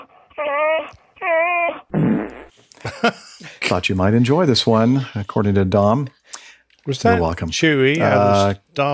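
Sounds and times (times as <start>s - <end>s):
dog whining: 0.0s - 1.9s
speech: 0.4s - 1.5s, 2.8s - 6.2s, 6.8s - 8.9s.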